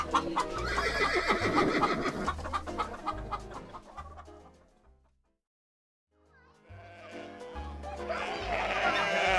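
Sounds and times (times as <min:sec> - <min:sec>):
hens clucking on a farm next to a school: 0:00.0 - 0:04.8, 0:08.1 - 0:09.3
horses whinnying on a farm next to a school: 0:00.6 - 0:02.3, 0:08.2 - 0:09.3.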